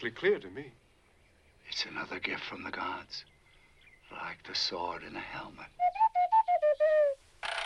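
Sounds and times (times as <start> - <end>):
speech: 0.0 - 0.8, 1.7 - 3.3, 4.1 - 5.9
mechanical owl whistling chirpy electronic notes: 5.8 - 7.6.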